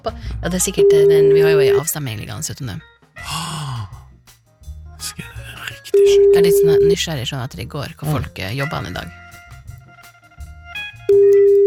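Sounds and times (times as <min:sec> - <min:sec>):
speech: 0:00.0 - 0:02.9, 0:06.0 - 0:09.2
telephone ringing tone beep: 0:00.8 - 0:01.9, 0:06.0 - 0:06.9, 0:11.1 - 0:11.6.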